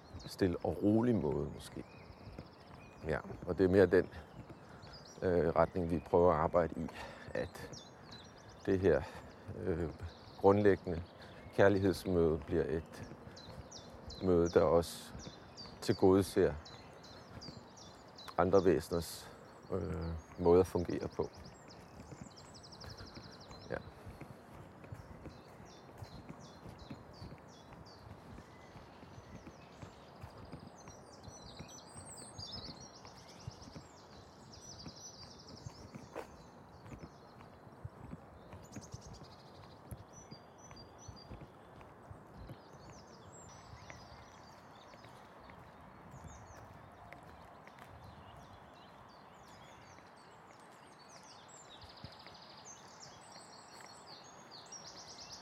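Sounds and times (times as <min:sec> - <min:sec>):
birds singing and chirping outdoors: 0:00.0 - 0:55.4
speech: 0:00.2 - 0:02.0, 0:03.0 - 0:04.4, 0:05.2 - 0:07.9, 0:08.7 - 0:13.2, 0:14.2 - 0:16.7, 0:18.4 - 0:21.4.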